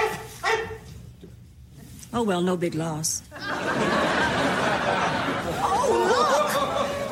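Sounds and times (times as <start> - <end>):
dog barking: 0.0 - 0.9
speech: 2.1 - 4.0
laughter: 3.3 - 7.0.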